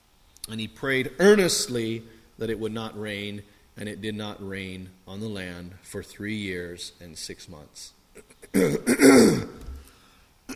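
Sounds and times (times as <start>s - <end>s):
speech: 0.5s - 9.6s
throat clearing into a lapel microphone: 8.2s - 9.7s.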